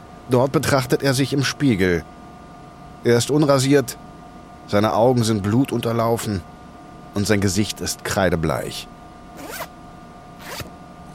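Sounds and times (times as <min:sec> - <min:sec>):
faint steady hum: 0:00.0 - 0:11.1
speech: 0:00.3 - 0:02.2, 0:03.0 - 0:04.0, 0:04.7 - 0:06.5, 0:07.1 - 0:09.7
trouser zipper rasping open: 0:09.4 - 0:09.7, 0:10.4 - 0:10.7.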